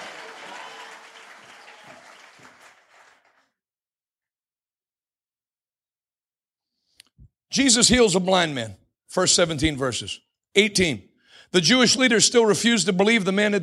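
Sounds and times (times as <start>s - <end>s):
audience clapping hands in applause: 0.0s - 3.5s
speech: 7.5s - 13.6s.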